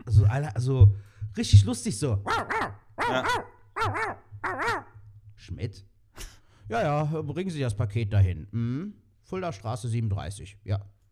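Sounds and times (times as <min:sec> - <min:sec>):
speech: 0:00.1 - 0:10.9
dog barks as mobile phone ringtone of an old man on a train: 0:02.3 - 0:04.8.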